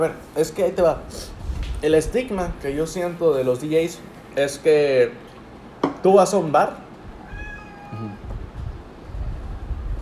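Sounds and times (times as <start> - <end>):
speech: 0.0 - 5.2, 6.0 - 6.8
cat meowing: 7.2 - 8.3.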